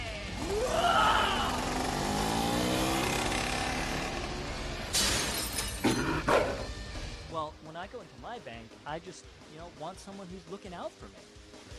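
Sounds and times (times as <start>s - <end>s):
motorcycle engine revving and roaring as it accelerates for a stunt jump: 0.1s - 4.9s
loud crash with shattering, smashing impacts: 4.9s - 6.0s
speech: 7.9s - 11.4s.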